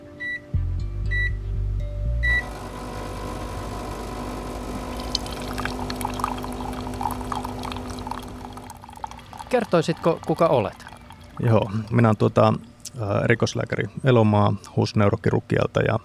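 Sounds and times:
coffee machine electronic beeps in a staff break room: 0.0 - 0.5, 1.1 - 1.4, 2.2 - 8.7
coffee machine loud grinding hum in a staff break room: 2.4 - 11.2
coffee pouring into a cup: 2.8 - 12.2
speech: 9.5 - 10.8, 11.4 - 16.0.

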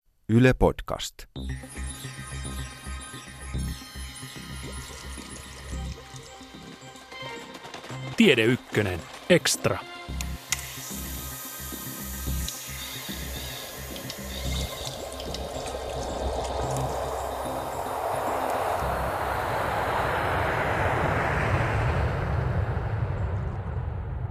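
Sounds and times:
speech: 0.3 - 1.8, 8.2 - 10.2
airplane taking off and climbing: 5.2 - 24.2.

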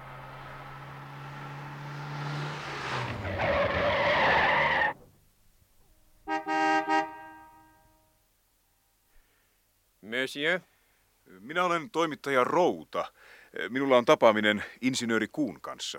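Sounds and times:
car tires screeching while braking: 0.0 - 5.1
car engine approaching: 0.0 - 5.3
car horn honking: 6.2 - 8.2
speech: 10.2 - 10.7, 11.5 - 15.9.

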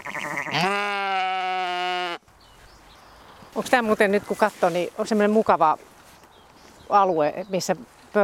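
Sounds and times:
sheep bleating in a meadow pasture: 0.0 - 2.2
quiet outdoor noise: 0.0 - 8.2
speech: 3.6 - 5.9, 6.9 - 8.2.

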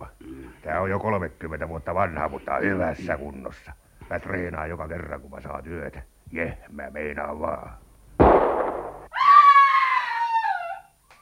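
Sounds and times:
speech: 0.7 - 7.8
loud gunshot: 8.2 - 9.1
high drawn-out scream: 9.1 - 11.0.

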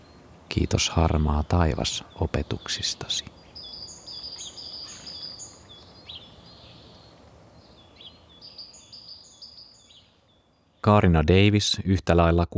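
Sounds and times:
birds singing outdoors in quick high chirping phrases: 0.0 - 11.8
speech: 0.6 - 3.4, 10.8 - 12.5.

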